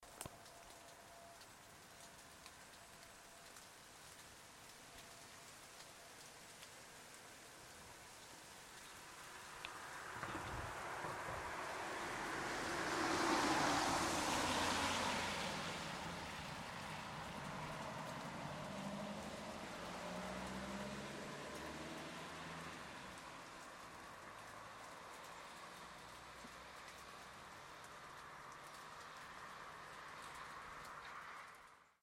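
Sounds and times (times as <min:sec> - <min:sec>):
car passing: 0:07.0 - 0:32.0.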